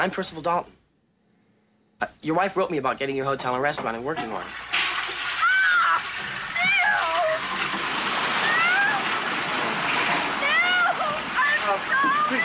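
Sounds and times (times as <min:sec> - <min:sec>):
speech: 0:00.0 - 0:00.8, 0:02.0 - 0:04.7, 0:11.7 - 0:12.4
water pouring down and overflowing from a house: 0:03.6 - 0:12.4.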